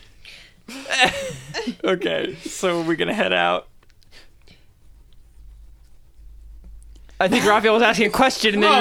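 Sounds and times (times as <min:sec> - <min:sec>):
steady low hum: 0:00.0 - 0:08.7
laughter: 0:00.7 - 0:03.2, 0:07.2 - 0:08.7
speech: 0:01.0 - 0:03.7, 0:07.2 - 0:08.7
eraser rubbing on paper: 0:04.0 - 0:08.2.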